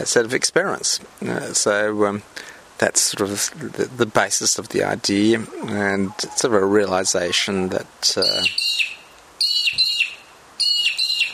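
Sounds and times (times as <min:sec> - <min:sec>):
speech: 0:00.0 - 0:08.9
mudlark magpie-lark whistled piping calls: 0:07.2 - 0:11.3.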